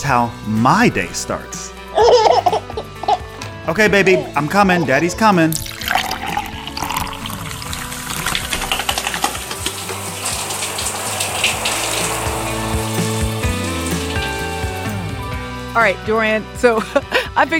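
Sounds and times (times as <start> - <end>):
speech: 0.1 - 2.2, 3.7 - 5.6, 15.8 - 17.5
water running steadily from a tap: 5.3 - 17.2.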